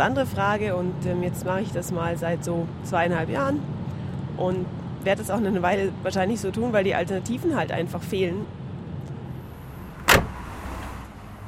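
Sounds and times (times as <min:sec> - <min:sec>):
speech: 0:00.0 - 0:03.8, 0:04.4 - 0:08.6
low steady hum of morning rush-hour traffic in Vaduz: 0:00.0 - 0:11.4
car whooshing past: 0:09.3 - 0:11.4.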